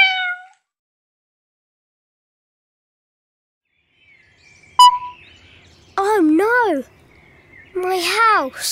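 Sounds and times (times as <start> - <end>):
orange cat meowing: 0.0 - 0.6
speech: 6.7 - 7.0, 7.8 - 8.7.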